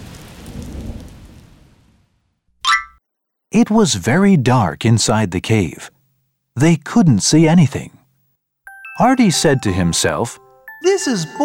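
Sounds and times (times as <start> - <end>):
rain falling: 0.0 - 2.2
speech: 3.5 - 6.0, 6.6 - 8.0, 9.0 - 11.4.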